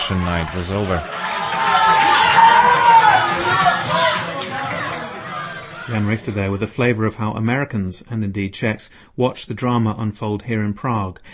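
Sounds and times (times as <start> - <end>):
large crowd cheering and shouting: 0.0 - 6.6
speech: 0.1 - 1.8, 5.9 - 11.3
high whoops: 1.2 - 5.6.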